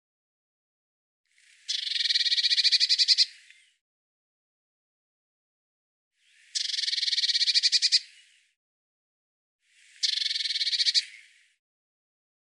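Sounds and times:
Eurasian blue tit churring buzzy pulsed rattles: 1.7s - 3.4s, 6.6s - 8.1s, 10.0s - 11.2s.

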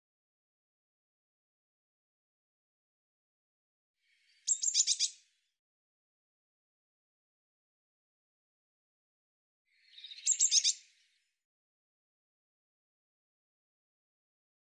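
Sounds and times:
Eurasian blue tit churring calls: 4.5s - 5.1s, 10.0s - 10.8s.

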